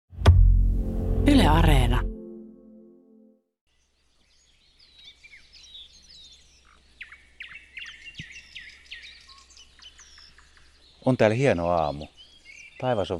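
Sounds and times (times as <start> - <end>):
speech: 1.2 - 2.1, 11.1 - 12.2, 12.8 - 13.1
nightingales, thrushes and spotted flycatchers singing at Siikalahti Finland: 3.7 - 13.1.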